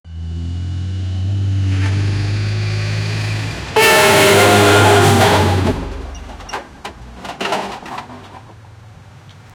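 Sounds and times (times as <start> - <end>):
truck crash: 0.4 - 8.6.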